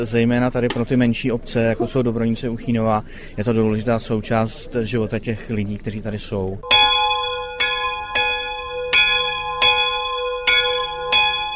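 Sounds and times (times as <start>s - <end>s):
speech: 0.0s - 6.8s
church bell ringing: 6.6s - 11.5s.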